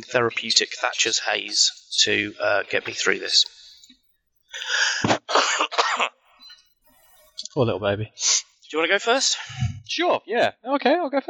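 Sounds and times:
speech: 0.0s - 3.6s, 4.6s - 6.2s, 7.6s - 11.2s
faint breathing: 4.5s - 5.2s, 9.3s - 9.9s
harsh cough from a person at the tail end of a cold: 4.6s - 6.1s.

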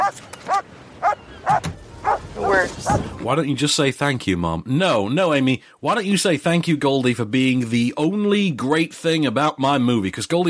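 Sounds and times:
dogs barking and yipping: 0.0s - 3.2s
speech: 3.2s - 10.4s.

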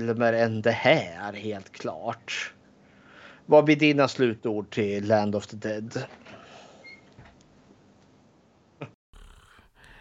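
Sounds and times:
speech: 0.0s - 2.6s, 3.5s - 6.2s
person imitating snoring: 9.1s - 9.9s.

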